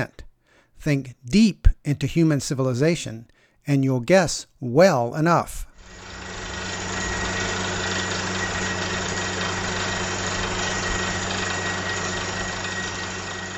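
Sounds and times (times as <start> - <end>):
speech: 0.8 - 6.0
faint high whine of well drilling rig: 5.8 - 13.5
low knocking throb of well drilling rig: 5.8 - 13.5
well drilling rig engine drilling through limestone bedrock for a water well: 5.8 - 13.5.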